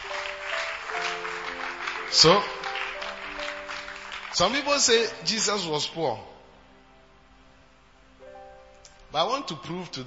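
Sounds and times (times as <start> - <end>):
crowd clapping: 0.0 - 5.1
speech: 2.1 - 2.6, 4.4 - 6.3, 9.2 - 10.0.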